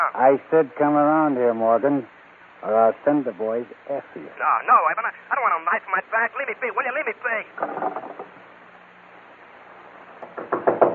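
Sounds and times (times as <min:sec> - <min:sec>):
speech: 0:00.0 - 0:08.4
faint low hum: 0:00.0 - 0:10.4
heavy knocking on a door: 0:10.3 - 0:10.9.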